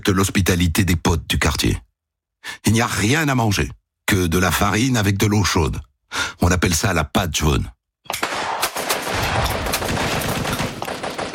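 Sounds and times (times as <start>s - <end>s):
speech: 0.1s - 7.8s
grenade and artillery bangs: 8.2s - 10.8s
automatic weapons gunfire in combat: 8.2s - 11.3s.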